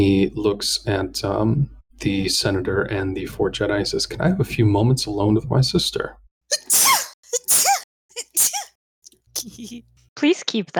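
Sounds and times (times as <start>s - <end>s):
speech: 0.0s - 6.8s, 9.5s - 10.7s
person sneezing: 6.5s - 8.7s, 9.4s - 9.8s.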